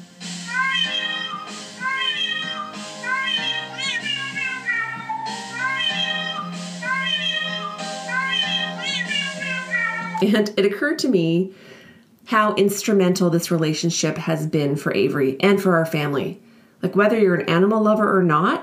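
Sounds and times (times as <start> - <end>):
loud cat meowing played back from an online video: 0.7 - 10.2
speech: 10.2 - 11.7, 12.3 - 18.6.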